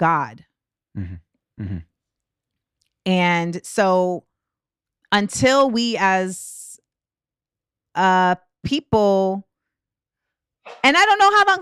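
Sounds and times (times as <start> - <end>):
speech: 0.0 - 1.9, 3.0 - 4.3, 5.1 - 6.6, 8.0 - 9.5, 10.6 - 11.5
person sneezing: 1.0 - 1.8.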